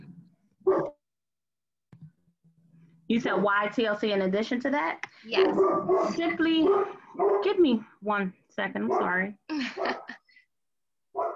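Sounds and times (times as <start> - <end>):
dog barking: 0.6 - 1.0, 5.4 - 7.6, 8.8 - 9.2, 11.2 - 11.3
speech: 3.1 - 10.0.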